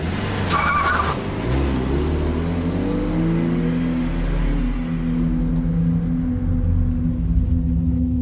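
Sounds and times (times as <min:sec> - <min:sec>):
Tesla car tires squealing: 0:00.0 - 0:01.7
Tesla car engine roaring as it accelerates into traffic: 0:00.0 - 0:08.2.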